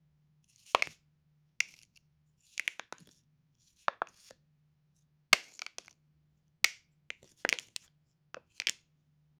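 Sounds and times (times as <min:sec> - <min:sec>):
small plastic object being picked up: 0:00.5 - 0:01.0, 0:01.6 - 0:03.2, 0:03.8 - 0:04.4, 0:06.7 - 0:08.8.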